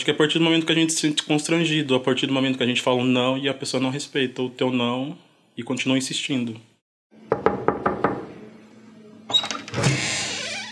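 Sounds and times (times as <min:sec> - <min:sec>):
speech: 0:00.0 - 0:06.7
knocking on a door: 0:07.3 - 0:08.3
creaking door opening with a long rising squeal: 0:09.3 - 0:10.6.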